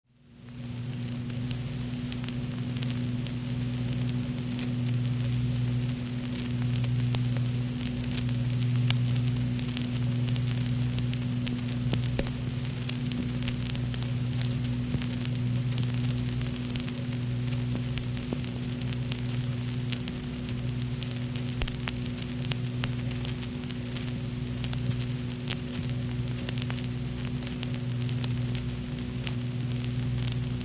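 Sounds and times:
vinyl record noise: 0.1 - 30.6.

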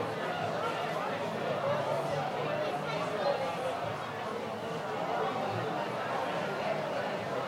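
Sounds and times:
noisy crowd chatter of talking voices: 0.0 - 7.4.

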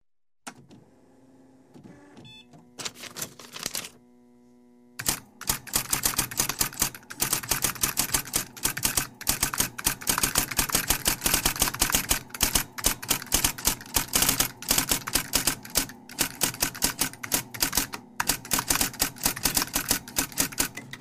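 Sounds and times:
electronic typewriter switching on: 2.3 - 4.0, 5.0 - 20.9.

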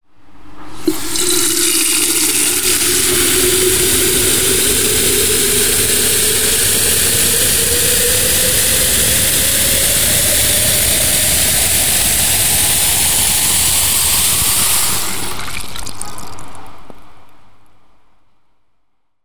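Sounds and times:
tap with filter attached running into kettle: 0.8 - 16.8.

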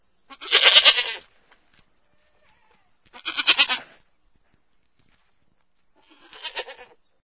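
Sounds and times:
old goat bleating tiredly: 0.3 - 1.3, 2.1 - 4.0, 6.0 - 7.0.

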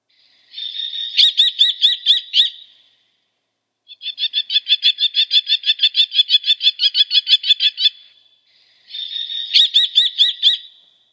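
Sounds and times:
common kestrel Falco tinnunculus calling: 0.5 - 2.7, 3.9 - 8.1, 8.9 - 10.7.

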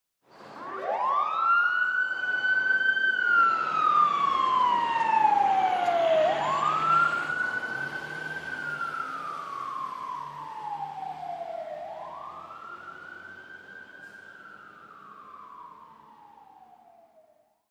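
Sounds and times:
fire truck passing with siren on: 0.3 - 17.5.

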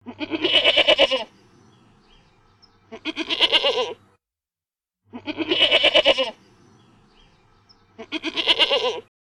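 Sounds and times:
goat: 0.0 - 1.3, 2.9 - 4.1, 5.1 - 6.4, 8.0 - 9.1.

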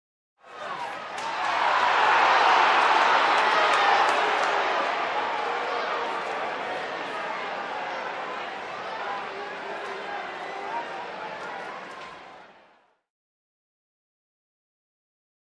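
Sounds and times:
crowd of people shouting in displeasure at a stadium: 0.6 - 12.4.

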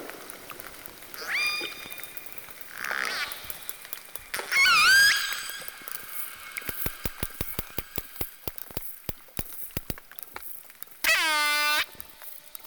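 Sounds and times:
whale call: 1.1 - 3.7, 4.4 - 7.0, 11.1 - 12.1.

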